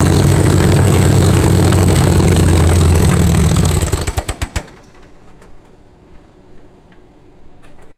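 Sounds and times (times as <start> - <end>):
vintage aircraft engine shutting off: 0.0 - 4.9.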